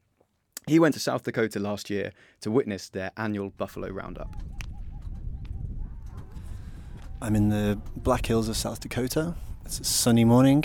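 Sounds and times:
speech: 0.7 - 4.6, 7.2 - 10.6
steady low outdoor rumble: 3.6 - 10.6
horse hooves clopping on firm ground in the Black Hills of South Dakota: 3.8 - 9.6.

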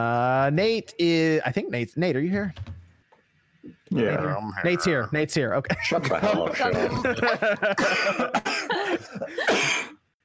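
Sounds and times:
speech: 0.0 - 2.7, 3.9 - 9.9
laughter: 5.7 - 9.8
person coughing in harsh raspy bursts: 7.7 - 10.0.

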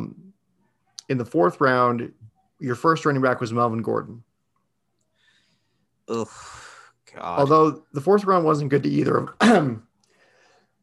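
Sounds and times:
speech: 1.1 - 4.3, 6.1 - 9.9
sneeze-like cough: 9.4 - 9.8.

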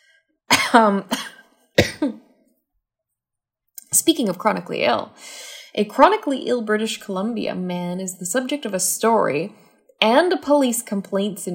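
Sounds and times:
person with chronic minor cough coughing harshly: 0.5 - 2.2
speech: 0.7 - 1.3, 2.0 - 2.2, 3.9 - 11.5.

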